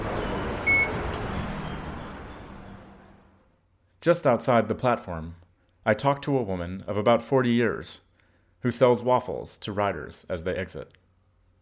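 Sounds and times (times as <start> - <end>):
steady traffic: 0.0 - 3.4
short electronic beep from a station fare gate: 0.2 - 3.2
speech: 4.0 - 11.0.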